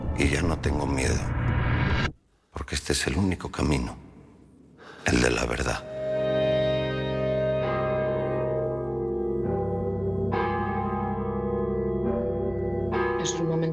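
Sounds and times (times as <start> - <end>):
speech: 0.2 - 4.1, 5.1 - 5.9
heavy distorted deep bells tolling: 5.9 - 13.7.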